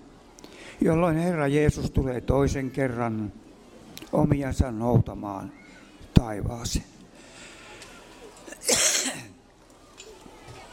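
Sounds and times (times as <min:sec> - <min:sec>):
speech: 0:00.8 - 0:03.4, 0:04.1 - 0:05.6, 0:06.2 - 0:06.9
harsh raspy cough: 0:08.5 - 0:09.4
throat clearing: 0:08.5 - 0:09.4.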